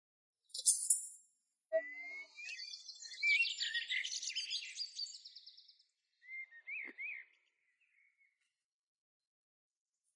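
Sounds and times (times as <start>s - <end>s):
bird singing a lively warbling song: 0.5s - 8.5s.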